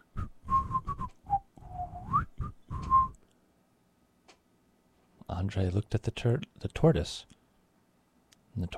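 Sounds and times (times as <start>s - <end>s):
person whistling short notes and a rising note: 0.0s - 3.2s
speech: 5.4s - 7.3s, 8.6s - 8.7s.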